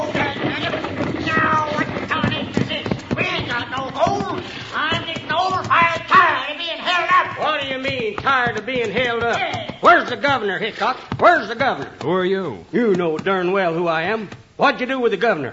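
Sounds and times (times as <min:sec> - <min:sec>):
stagecoach rattling to a stop: 0:00.0 - 0:10.6
several voices talking and calling out: 0:00.0 - 0:13.6
horses' hooves clopping: 0:00.0 - 0:14.6
speech: 0:08.5 - 0:15.5.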